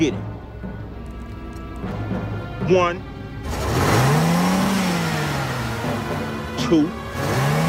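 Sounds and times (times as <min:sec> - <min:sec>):
speech: 0:00.0 - 0:00.3, 0:02.7 - 0:03.6, 0:06.7 - 0:07.4
car engine revving as the vehicle pulls away: 0:01.6 - 0:07.6.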